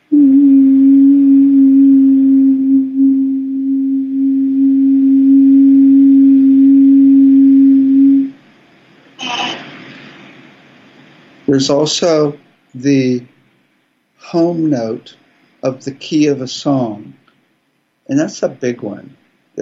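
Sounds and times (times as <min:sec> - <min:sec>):
low-pitched pure sine wave tone: 0:00.0 - 0:09.6
burst of noise: 0:09.1 - 0:11.6
speech: 0:11.6 - 0:13.3, 0:14.3 - 0:17.1, 0:18.1 - 0:19.6.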